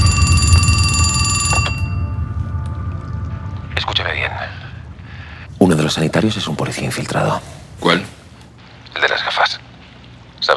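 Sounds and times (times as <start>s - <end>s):
telephone ringing in a dining room: 0.0s - 2.7s
low rumble of room noise: 0.0s - 10.5s
speech: 5.9s - 8.2s.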